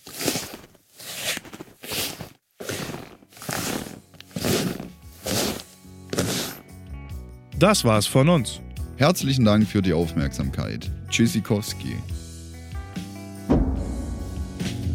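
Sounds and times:
footsteps crunching through snow at a walking pace: 0.0s - 6.7s
speech: 7.6s - 12.1s.

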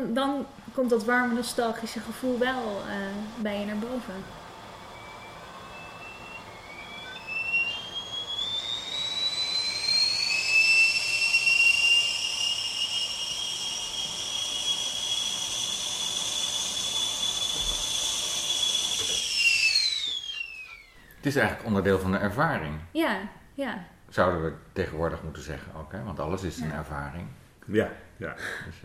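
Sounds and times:
speech: 0.0s - 4.4s, 21.2s - 28.8s
whistling kettle coming to the boil: 0.0s - 21.8s
rushing hiss of steam from a kettle: 0.6s - 20.8s.

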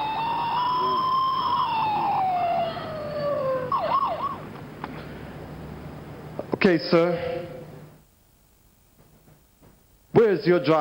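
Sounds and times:
police siren wailing and yelping: 0.0s - 4.5s
speech: 6.6s - 7.5s, 10.4s - 10.8s.

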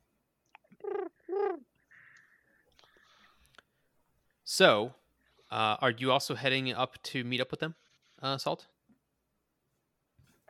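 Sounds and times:
loud harsh bird squawking calls: 0.8s - 1.6s
speech: 4.5s - 8.7s.

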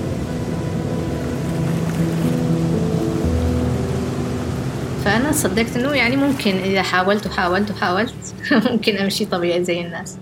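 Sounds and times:
sea waves washing on the shore: 0.0s - 10.2s
speech: 5.1s - 10.2s.

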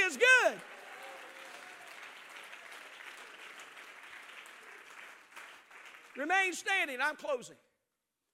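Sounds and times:
audience clapping hands: 0.0s - 6.6s
speech: 6.2s - 7.7s.

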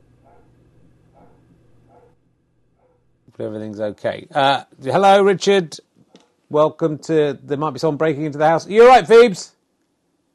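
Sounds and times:
low constant hum: 0.0s - 10.3s
dog barking: 0.2s - 2.2s, 2.8s - 3.1s
speech: 3.4s - 5.9s, 6.5s - 9.6s.

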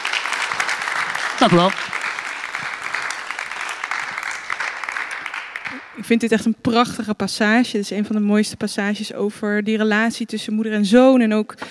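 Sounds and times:
small group of people clapping: 0.0s - 6.3s
speech: 1.4s - 2.0s, 6.0s - 11.6s.

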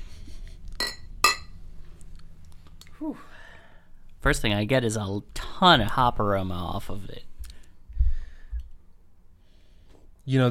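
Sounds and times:
beer glasses clinking in a toast: 0.8s - 1.6s
speech: 3.0s - 3.4s, 4.2s - 7.3s, 10.3s - 10.4s.

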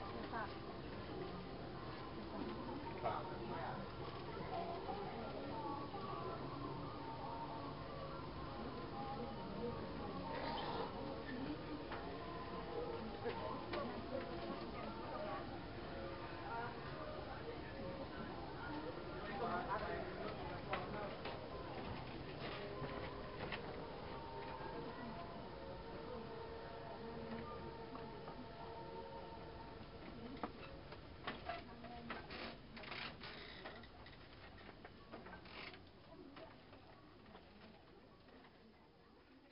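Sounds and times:
faint voices: 0.0s - 39.4s
soft tonal music from a massage business: 0.0s - 39.4s
footsteps on creaky wooden floor in an open-sided building: 32.3s - 34.7s.

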